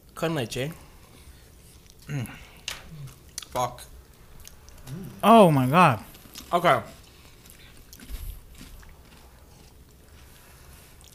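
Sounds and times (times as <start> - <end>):
speech: 0.2 - 0.8, 2.1 - 3.9, 4.9 - 7.0
chewing crunchy Biscoff cookies: 0.7 - 11.1
person making appreciative murmurs and brief remarks: 2.1 - 3.1, 4.8 - 6.1.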